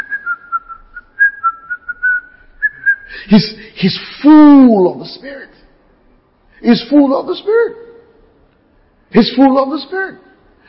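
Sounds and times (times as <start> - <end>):
person whistling a simple tune: 0.0 - 3.2
speech: 3.3 - 5.6, 6.6 - 7.8, 9.1 - 10.6.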